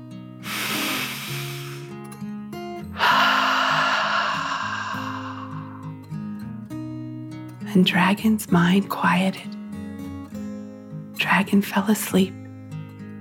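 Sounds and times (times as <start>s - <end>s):
deep breath in and out: 0.4s - 2.0s, 2.9s - 6.1s
speech: 7.7s - 9.6s, 11.3s - 12.4s.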